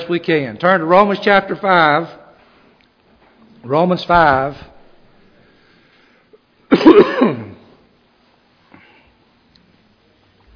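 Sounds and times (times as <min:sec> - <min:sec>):
speech: 0:00.0 - 0:02.2, 0:03.6 - 0:04.7
coughing: 0:06.7 - 0:07.8
rough throat clearing: 0:06.7 - 0:07.8.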